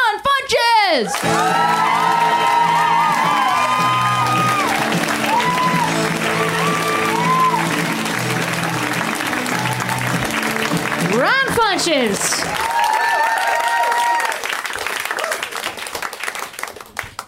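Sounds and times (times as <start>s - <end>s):
speech: 0.9s - 1.6s, 11.7s - 12.6s
crowd whooping and cheering: 1.0s - 11.1s, 12.4s - 15.7s
sustained applause: 1.1s - 17.2s.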